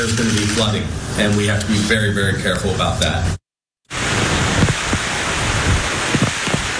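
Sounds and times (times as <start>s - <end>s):
speech: 0.0s - 3.4s
gale-force wind gusts: 3.9s - 6.7s
heavy rain from an approaching Category 1 hurricane on Hawaii's Big Island: 3.9s - 6.7s.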